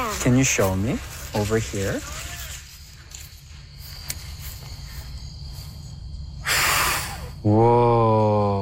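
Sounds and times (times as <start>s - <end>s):
speech: 0.2s - 2.2s, 7.4s - 7.9s
child blowing a breathy puff at a dandelion seed head: 6.4s - 7.3s.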